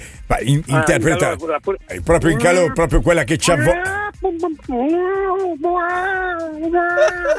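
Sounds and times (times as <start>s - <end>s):
speech: 0.3s - 7.3s
person imitating a cat with long drawn-out meows: 5.0s - 7.2s.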